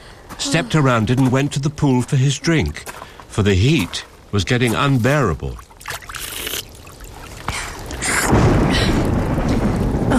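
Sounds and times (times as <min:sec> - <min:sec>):
speech: 0:00.5 - 0:05.7
steady rain pouring: 0:04.2 - 0:10.1
deep rumble of thunder: 0:07.9 - 0:10.1.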